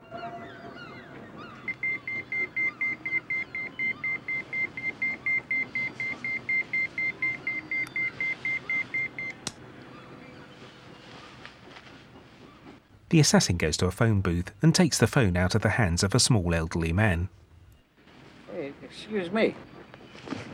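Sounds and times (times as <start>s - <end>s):
pager beeping with an incoming call: 0.1s - 9.4s
speech: 13.1s - 17.4s, 19.0s - 19.7s.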